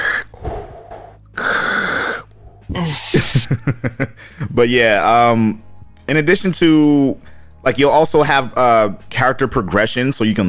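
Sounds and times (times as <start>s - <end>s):
heavy breathing into the microphone: 0.0s - 3.2s
laughter: 2.8s - 4.6s
speech: 2.8s - 10.4s.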